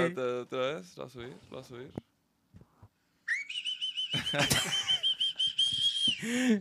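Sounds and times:
speech: 0.0 - 2.1, 4.3 - 5.0, 6.2 - 6.6
loud sustained high-pitched whistle: 3.3 - 6.3
people laughing: 4.1 - 6.6.

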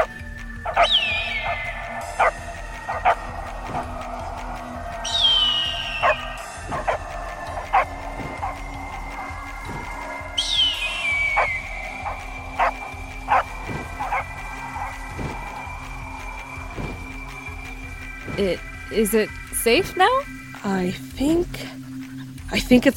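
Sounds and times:
several dogs barking and yipping: 0.0 - 18.3
speech: 19.0 - 21.7, 22.6 - 22.9.

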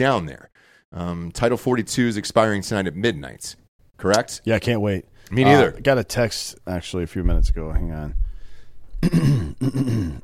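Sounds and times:
speech: 0.0 - 8.2, 9.0 - 10.2
person clearing throat: 9.0 - 10.2.

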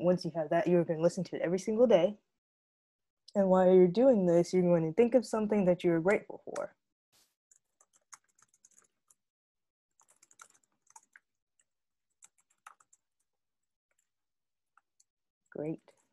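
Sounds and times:
speech: 0.1 - 2.3, 3.3 - 6.8, 15.6 - 15.9
typing on a computer keyboard: 7.5 - 9.2, 10.0 - 11.2, 12.2 - 13.0.

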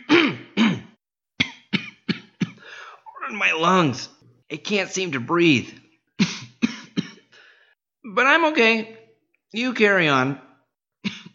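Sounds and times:
person coughing harshly: 0.0 - 3.0, 6.2 - 7.3, 11.0 - 11.3
speech: 3.3 - 5.8, 8.2 - 10.4.

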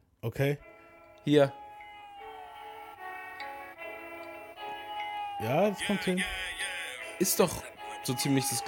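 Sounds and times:
speech: 0.2 - 1.6, 5.4 - 6.6, 7.2 - 8.6
trap rap track: 4.9 - 8.6.

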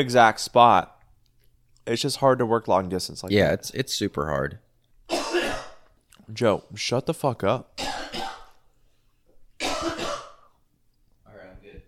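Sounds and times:
speech: 0.0 - 0.9, 1.8 - 4.6, 6.3 - 7.8
loud harsh throat clearing: 5.1 - 5.9, 7.8 - 8.6, 9.6 - 10.6
person coughing: 5.1 - 5.9, 7.8 - 8.6, 9.6 - 10.6.

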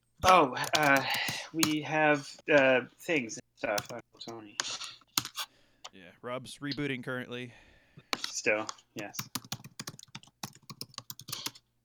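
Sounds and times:
speech: 0.2 - 4.8, 6.0 - 9.4
typing on a clicky mechanical keyboard: 0.6 - 1.8, 9.2 - 11.6.

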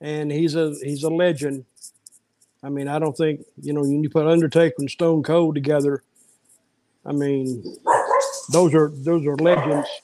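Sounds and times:
speech: 0.0 - 2.0, 2.6 - 6.1, 7.0 - 10.0
laughter: 0.1 - 1.6, 2.7 - 6.0, 7.1 - 7.6, 8.5 - 10.0
dog barking: 7.8 - 8.5.

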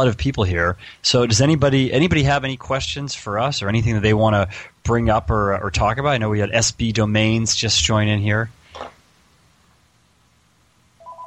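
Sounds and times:
speech: 0.0 - 9.0
faint hum: 0.0 - 11.2
electronic phone ring with two-tone beeping for an incoming call: 11.0 - 11.2.

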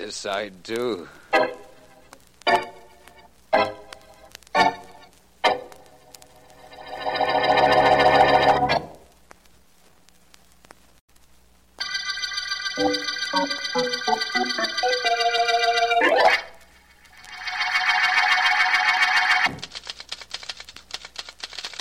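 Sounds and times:
speech: 0.0 - 1.6
swelling musical sting with a rising sweep: 6.4 - 9.0, 11.9 - 19.5
rapid steady typewriter clatter: 19.4 - 21.7.

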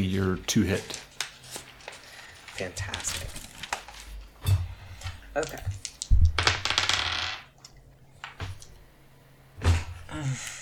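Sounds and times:
speech: 0.1 - 1.1, 2.6 - 3.5, 5.4 - 5.9, 10.2 - 10.6
dice clattering across a tabletop: 5.4 - 7.5.

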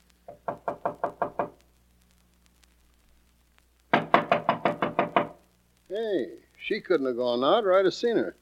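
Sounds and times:
knocking on a wooden dressing room door: 0.3 - 1.6, 3.9 - 5.4
speech: 6.0 - 8.3.

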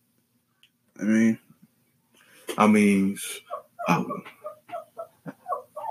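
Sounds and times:
speech: 1.0 - 1.4, 2.6 - 4.4
small dog yapping for attention: 3.4 - 5.8.

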